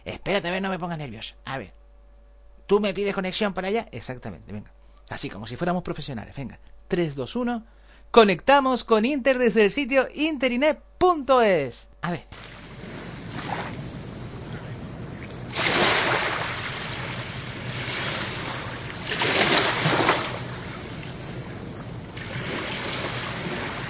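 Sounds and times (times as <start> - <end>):
speech: 0.1 - 1.8, 2.7 - 12.6
sea waves washing onto an island shore: 12.4 - 23.8
wind noise buffeting: 12.4 - 23.8.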